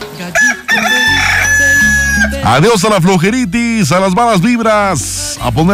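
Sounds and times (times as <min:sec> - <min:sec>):
rooster crowing: 0:00.3 - 0:02.5
speech: 0:02.5 - 0:05.7.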